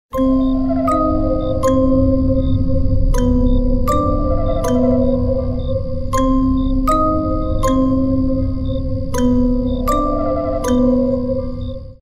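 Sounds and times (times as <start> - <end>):
creepy music box melody: 0.1 - 12.0.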